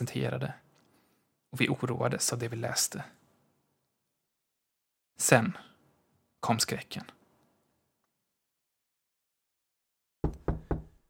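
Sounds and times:
speech: 0:00.0 - 0:00.7, 0:01.5 - 0:03.2, 0:05.2 - 0:05.7, 0:06.4 - 0:07.2
knocking on a bedroom door: 0:10.2 - 0:11.0.

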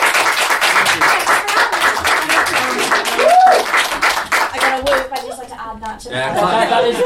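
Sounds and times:
audience applause at a costume competition: 0:00.0 - 0:05.3
whooping cheers: 0:03.0 - 0:03.8
speech: 0:06.0 - 0:07.0
laughter: 0:06.1 - 0:07.0.

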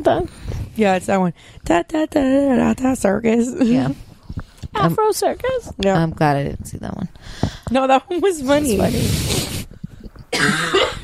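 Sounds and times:
speech: 0:00.0 - 0:04.1, 0:04.8 - 0:09.4, 0:10.3 - 0:11.0
person coughing harshly: 0:10.3 - 0:11.0.

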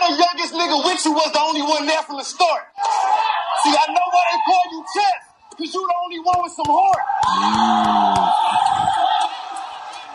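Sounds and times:
speech: 0:00.7 - 0:02.7, 0:03.6 - 0:09.2
crowd cheering and yelling at a rap battle: 0:02.7 - 0:10.1.

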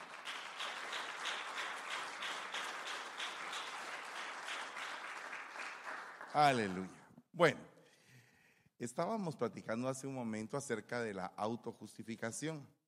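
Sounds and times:
audience applause: 0:00.0 - 0:07.0
speech: 0:06.3 - 0:07.7, 0:08.8 - 0:12.8.

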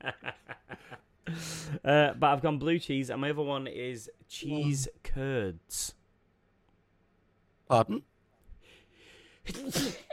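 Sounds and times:
speech: 0:01.3 - 0:06.0, 0:07.7 - 0:08.1, 0:09.5 - 0:10.1
person sneezing: 0:09.4 - 0:10.1.

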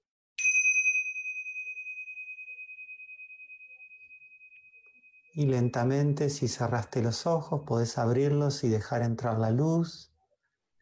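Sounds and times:
meditation bell ringing: 0:00.4 - 0:06.9
speech: 0:05.4 - 0:10.1.

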